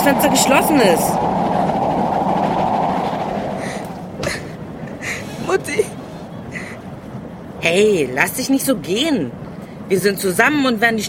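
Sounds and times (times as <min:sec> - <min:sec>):
speech: 0:00.0 - 0:01.5, 0:07.6 - 0:11.0
steam train running on rails on a bitterly cold day: 0:00.0 - 0:07.6.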